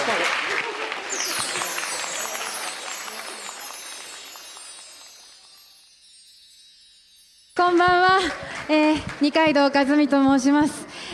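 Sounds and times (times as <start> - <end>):
audience applause: 0.0 - 6.0
speech: 7.7 - 11.1.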